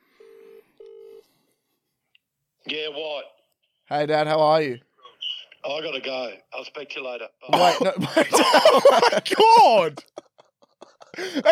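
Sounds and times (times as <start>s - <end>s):
telephone ringback tone: 0.2s - 1.2s
speech: 2.7s - 4.9s, 5.6s - 10.2s, 11.2s - 11.5s
laughter: 7.5s - 11.5s.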